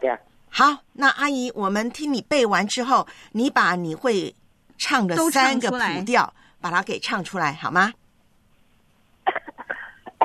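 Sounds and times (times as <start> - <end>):
speech: 0.0 - 8.0, 9.3 - 9.5
person with a cold coughing: 9.3 - 10.2
throat clearing: 9.3 - 10.2.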